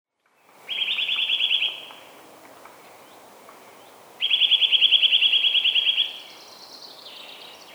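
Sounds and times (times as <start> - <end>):
outdoor background hiss: 0.3 - 7.7
Eurasian nuthatch Sitta europaea giving rapid trilled calls: 0.7 - 2.2, 3.1 - 7.7.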